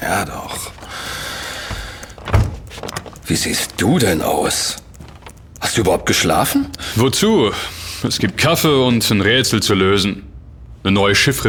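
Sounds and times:
faint rattling: 0:00.0 - 0:06.4
speech: 0:00.1 - 0:00.4, 0:03.3 - 0:04.8, 0:05.8 - 0:11.4
door swinging shut with a solid thud: 0:01.6 - 0:03.2.

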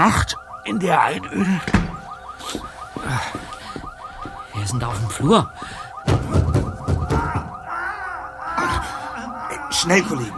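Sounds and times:
speech: 0:00.0 - 0:03.6, 0:04.6 - 0:06.4, 0:09.8 - 0:10.3
car alarm siren: 0:00.0 - 0:10.3
thumping noises: 0:01.6 - 0:07.8.

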